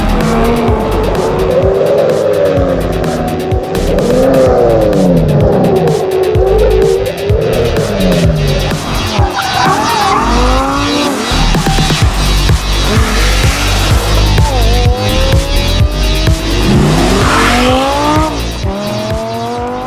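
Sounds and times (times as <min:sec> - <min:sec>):
Lamborghini Gallardo sports car engine revving through gear changes: 0:00.0 - 0:19.8
tires squealing: 0:00.0 - 0:19.8.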